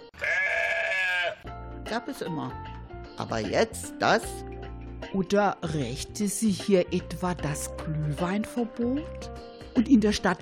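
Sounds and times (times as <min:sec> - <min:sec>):
sheep bleating: 0:00.2 - 0:01.5
speech: 0:01.9 - 0:04.5, 0:05.1 - 0:10.3.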